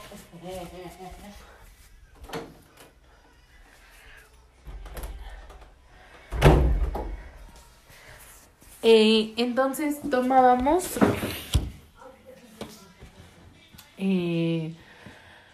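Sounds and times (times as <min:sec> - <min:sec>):
speech: 0:00.4 - 0:01.6, 0:08.8 - 0:11.4, 0:14.0 - 0:14.8
door pushed shut with a solid thud: 0:06.3 - 0:07.1.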